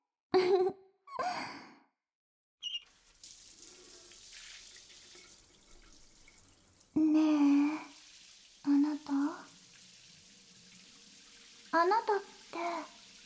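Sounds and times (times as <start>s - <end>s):
water pouring and splashing, rinsing soap foam off: 2.8s - 13.2s
breathy sighs: 7.0s - 7.9s
speech: 11.8s - 13.0s.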